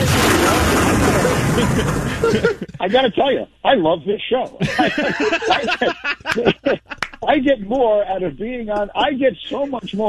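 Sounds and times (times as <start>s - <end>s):
explosion sound effect: 0.0s - 2.7s
laughter: 0.0s - 3.3s, 4.6s - 7.6s, 8.8s - 10.0s
speech: 1.6s - 10.0s.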